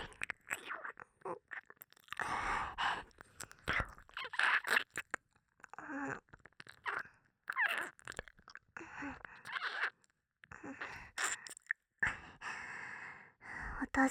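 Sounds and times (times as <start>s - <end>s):
wet ear licking mouth sounds: 0.0s - 10.1s, 10.7s - 11.8s
soft breaths and sighs: 2.2s - 4.0s, 8.8s - 9.6s, 10.5s - 14.0s.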